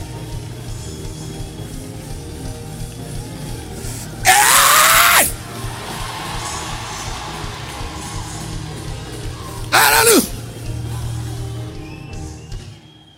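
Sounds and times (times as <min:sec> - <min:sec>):
crowd screaming: 0:04.2 - 0:08.6, 0:09.5 - 0:10.3
crowd murmuring: 0:09.6 - 0:10.3.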